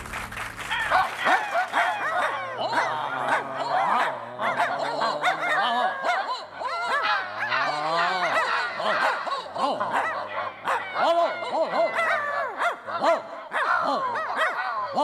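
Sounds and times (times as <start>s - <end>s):
low steady hum: 0.0s - 1.3s
laughter: 0.0s - 15.0s
dog barking and yelping: 0.9s - 15.0s.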